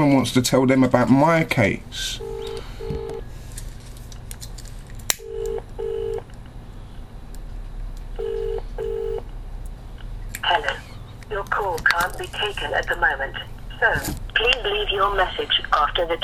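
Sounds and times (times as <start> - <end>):
speech: 0.0 - 2.3, 14.8 - 16.2
low hum: 0.0 - 16.2
telephone line tone after call hung up: 2.2 - 3.2, 5.2 - 6.2, 8.2 - 9.2.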